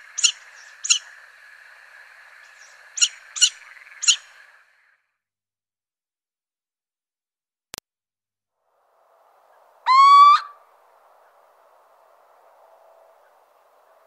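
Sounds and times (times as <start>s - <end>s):
little owl giving a rising mewing note: 0.2s - 1.1s, 3.0s - 4.4s, 9.8s - 10.6s.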